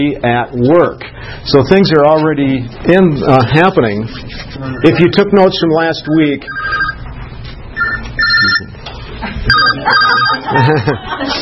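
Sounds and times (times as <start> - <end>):
speech: 0.0 - 6.9, 8.4 - 11.4
mobile phone ringing during a Bible teaching session: 6.1 - 7.1, 7.8 - 8.8, 9.5 - 10.6
laughter: 9.1 - 11.4.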